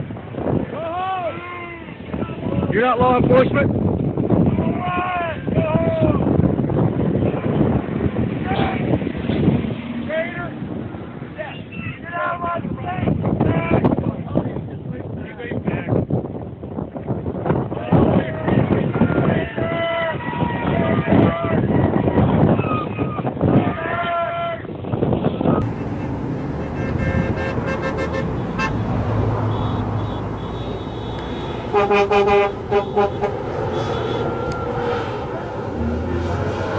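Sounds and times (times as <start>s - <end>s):
convoy vehicle engines rumbling: 0.0s - 36.7s
wind: 0.0s - 36.7s
speech: 2.8s - 4.0s
vehicle horns tooting in a convoy: 25.6s - 35.2s.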